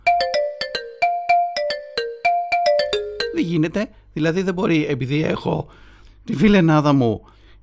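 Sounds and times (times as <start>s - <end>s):
phone messaging app ringtone: 0.0s - 3.6s
speech: 3.4s - 7.4s.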